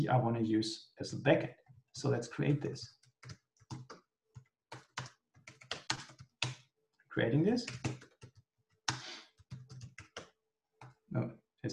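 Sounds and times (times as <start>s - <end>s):
speech: 0.0s - 3.4s, 7.2s - 8.0s, 11.1s - 11.7s
typing on a computer keyboard: 2.9s - 6.6s, 7.6s - 11.0s.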